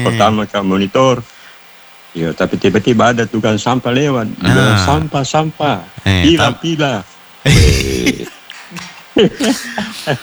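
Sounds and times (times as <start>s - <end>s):
person coughing: 0.0s - 0.4s, 4.4s - 5.1s, 6.0s - 6.6s, 7.5s - 8.4s, 9.4s - 10.2s
laughter: 0.0s - 0.5s, 4.4s - 5.1s, 5.9s - 6.8s, 7.5s - 10.2s
speech: 0.0s - 1.4s, 2.1s - 10.2s.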